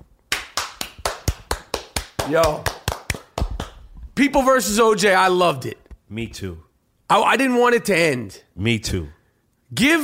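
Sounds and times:
sharp hand claps: 0.3s - 3.9s
speech: 2.3s - 2.7s, 4.2s - 10.0s.

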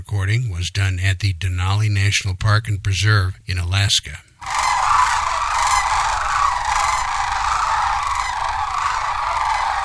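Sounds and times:
speech: 0.1s - 4.3s
chorus of sandhill crane calls from a large flock: 4.4s - 9.8s.

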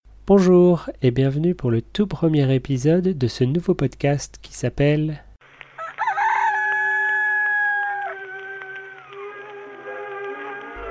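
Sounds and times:
speech: 0.3s - 5.2s
rooster crowing: 5.8s - 10.8s.

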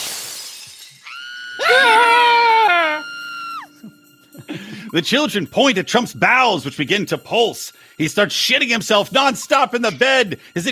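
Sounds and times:
woman screaming: 1.0s - 3.7s
speech: 4.9s - 10.7s.

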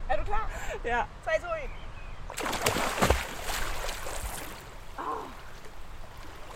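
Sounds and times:
speech: 0.1s - 3.0s
naked person plunging into water: 2.4s - 5.4s.

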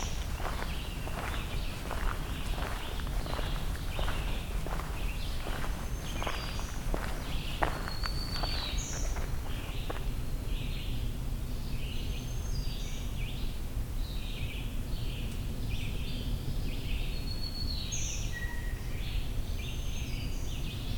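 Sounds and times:
steady low rumble of outdoor noise: 0.0s - 10.4s
black-throated green warbler song: 0.0s - 20.9s.

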